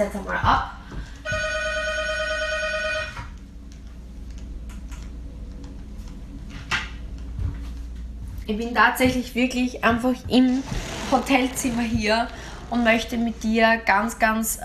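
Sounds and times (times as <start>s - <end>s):
speech: 0.0s - 0.7s, 8.5s - 14.6s
low hum: 0.0s - 14.6s
telephone in a hotel room ringing with a trilling electronic tone: 1.2s - 3.3s.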